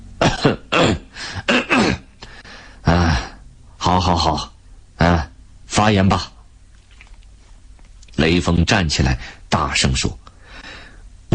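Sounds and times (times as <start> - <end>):
man clearing his throat at a meeting: 0.2 - 2.1
man coughing dryly into a microphone at a meeting: 0.2 - 2.2
speech: 4.0 - 4.6, 5.8 - 6.4, 8.3 - 10.2.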